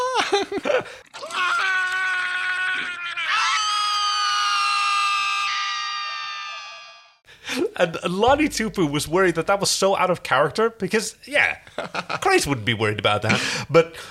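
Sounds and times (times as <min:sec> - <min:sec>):
speech: 0:00.3 - 0:01.1, 0:07.8 - 0:14.0
two people screaming in high-pitched wails: 0:01.1 - 0:07.0.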